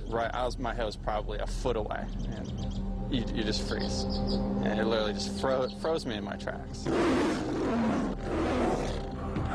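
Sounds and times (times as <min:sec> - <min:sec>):
speech: 0:00.1 - 0:08.5
deep rumbling tiger roar: 0:06.8 - 0:09.5.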